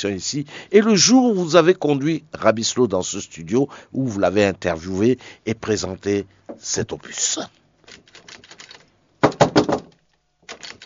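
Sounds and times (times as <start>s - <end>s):
speech: 0.0s - 7.6s
knocking on a door: 9.2s - 9.9s.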